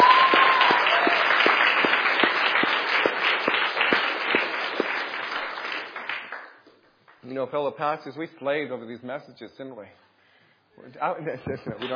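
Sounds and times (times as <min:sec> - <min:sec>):
crowd applauding: 0:00.0 - 0:06.6
speech: 0:07.4 - 0:10.1, 0:10.8 - 0:11.9.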